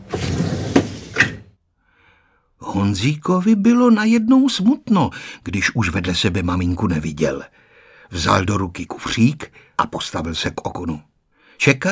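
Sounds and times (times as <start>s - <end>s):
train carriage door sliding shut: 0.0s - 1.5s
speech: 2.8s - 11.8s.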